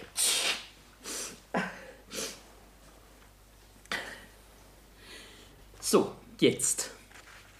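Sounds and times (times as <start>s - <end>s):
woman blowing her nose: 0.2s - 1.4s
speech: 5.9s - 7.0s.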